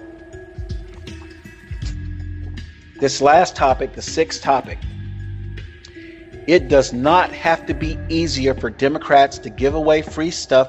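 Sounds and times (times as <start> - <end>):
sipping and swallowing water: 0.1 - 2.9
speech: 3.0 - 4.9, 6.4 - 10.6.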